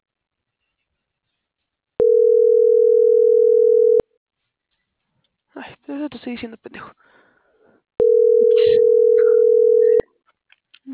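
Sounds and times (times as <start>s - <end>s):
telephone ringing tone on an unanswered call: 2.0s - 4.0s, 8.0s - 10.0s
speech: 5.9s - 7.2s.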